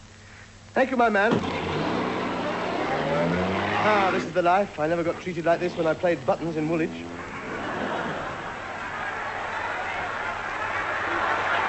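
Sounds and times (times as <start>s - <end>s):
speech: 0.8s - 1.6s, 3.2s - 7.2s
large outdoor crowd cheering on the pavements: 1.3s - 11.6s
laughter: 1.4s - 11.6s.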